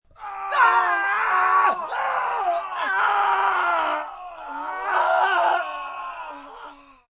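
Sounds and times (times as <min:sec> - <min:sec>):
group of three to six men screaming: 0:00.2 - 0:07.0.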